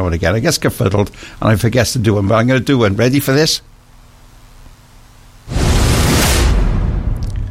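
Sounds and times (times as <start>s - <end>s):
speech: 0.0s - 3.7s
swoosh sound effect: 5.5s - 7.4s.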